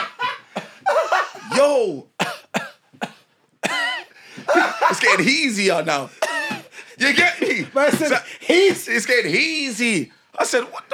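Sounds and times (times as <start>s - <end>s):
laughter: 0.0s - 1.8s, 4.4s - 5.5s
person imitating coughing: 0.6s - 4.9s
speech: 1.8s - 2.1s, 5.1s - 6.2s, 7.0s - 10.9s.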